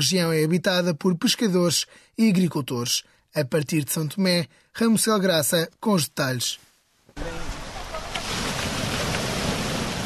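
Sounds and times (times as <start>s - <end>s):
speech: 0.0s - 7.5s
sea waves crashing and roaring: 7.2s - 10.0s.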